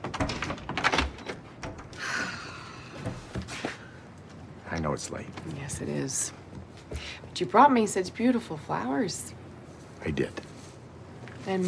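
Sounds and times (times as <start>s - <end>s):
apartment door being unlatched and opened: 0.0s - 2.0s
speech: 4.7s - 6.4s, 7.4s - 9.4s, 10.0s - 10.4s, 11.4s - 11.6s.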